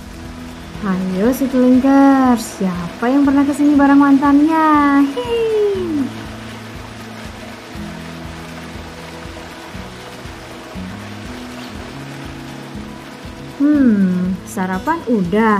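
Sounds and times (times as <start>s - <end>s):
tonal instrumental melody in stepped sustained notes: 0.0s - 15.5s
waterfall rushing water: 0.0s - 15.5s
speech: 0.8s - 6.2s, 14.6s - 15.5s.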